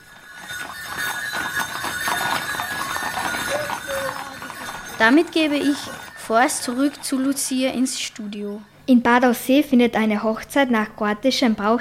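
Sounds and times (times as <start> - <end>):
hooves of a horse-drawn carriage clip-clopping: 0.0 - 8.5
speech: 5.0 - 11.7.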